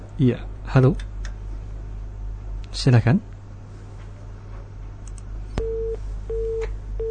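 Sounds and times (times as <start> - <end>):
low telephone line hum: 0.0 - 7.0
speech: 0.2 - 1.1, 2.8 - 3.3
telephone busy tone after a dropped call-in line: 5.6 - 7.0.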